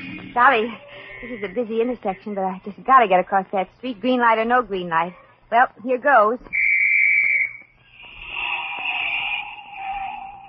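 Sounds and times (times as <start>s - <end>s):
faint noise: 0.0s - 10.4s
speech: 0.4s - 6.6s
shrill police whistle blast: 6.5s - 7.7s
wavering trilled police whistle: 6.5s - 10.4s.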